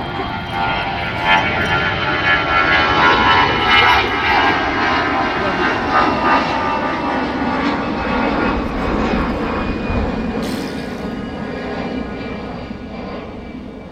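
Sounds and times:
airplane engines roaring as aircraft take off at airport: 0.0s - 13.8s.

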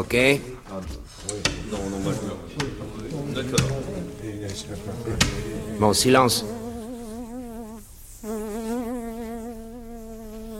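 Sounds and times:
speech: 0.0s - 2.7s, 3.4s - 6.6s
laughter: 1.4s - 6.4s
fly buzzing: 2.9s - 10.5s.

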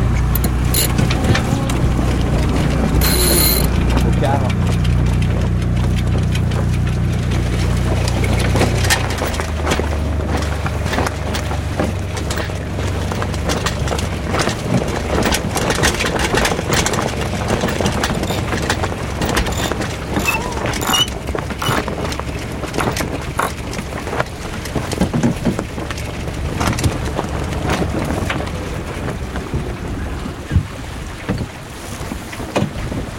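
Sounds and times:
sailboat inboard engine idling at low revs: 0.0s - 31.1s
water noise: 0.0s - 33.1s
scattered clicks and knocks on a sailboat: 0.4s - 1.2s, 3.0s - 3.7s, 17.5s - 22.2s, 22.8s - 23.6s.

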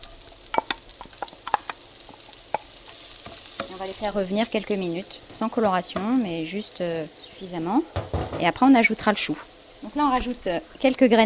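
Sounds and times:
butter and olive oil sizzling and foaming in a pan: 0.0s - 11.2s
stirring scrapes in a pan: 0.2s - 4.1s
speech: 3.8s - 11.2s.

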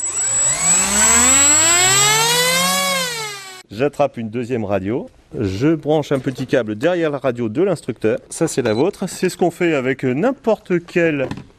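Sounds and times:
model airplane engine starting and running before takeoff: 0.0s - 3.6s
speech: 3.7s - 11.5s.

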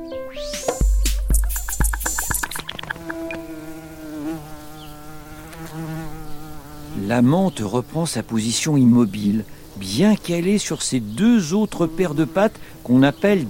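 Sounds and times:
fly buzzing: 0.8s - 13.4s
speech: 7.1s - 13.4s.

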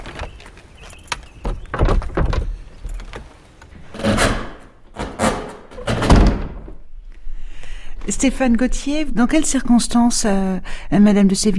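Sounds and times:
creaking and clattering: 0.0s - 6.9s
door banging and rattling: 1.4s - 3.1s, 3.8s - 6.9s
speech: 8.1s - 11.5s.

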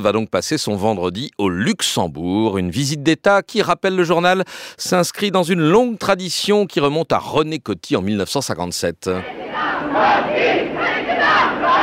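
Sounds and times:
speech: 0.0s - 11.8s
crowd cheering and acclaiming a visiting French president in Luxembourg: 9.2s - 11.8s.

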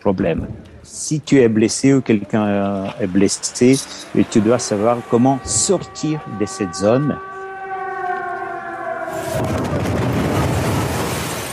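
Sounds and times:
speech: 0.0s - 7.3s
steady siren wailing: 3.4s - 11.1s
loud explosion with roaring blast: 9.1s - 11.5s.

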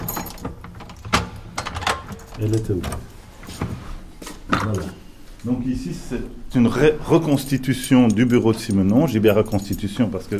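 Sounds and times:
keys or metal hardware rattling: 0.0s - 3.2s, 7.1s - 10.3s
door opening: 0.0s - 3.8s
faint room hum: 0.0s - 10.3s
speech: 2.4s - 3.1s, 4.7s - 10.3s.

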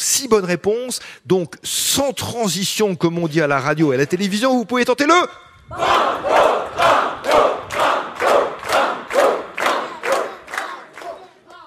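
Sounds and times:
speech: 0.2s - 8.5s
large quiz audience shouting a word in rhythmic unison: 5.7s - 11.6s.

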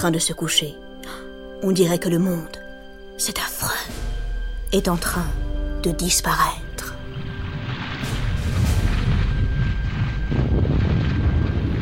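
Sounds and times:
speech: 0.0s - 2.6s, 3.2s - 6.6s
volcanic explosions rumbling at sunset on an ash-covered path: 7.4s - 11.8s.

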